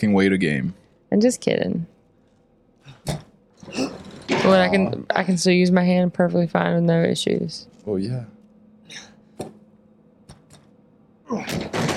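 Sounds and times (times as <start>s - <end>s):
speech: 0.0s - 2.0s, 4.5s - 9.5s, 11.3s - 11.8s
door closing in a video game: 11.4s - 11.9s.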